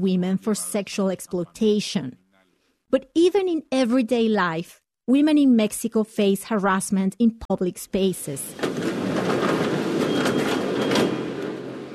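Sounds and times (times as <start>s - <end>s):
speech: 0.0s - 2.2s, 2.9s - 8.8s
Mexico City subway train rumbling: 8.5s - 11.9s.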